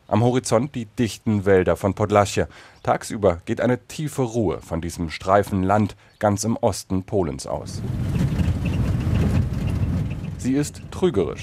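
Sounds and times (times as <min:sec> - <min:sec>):
speech: 0:00.1 - 0:08.2, 0:10.4 - 0:11.4
faint rattles: 0:07.6 - 0:11.4
old four-wheel-drive car driving over a bumpy road: 0:07.6 - 0:11.4.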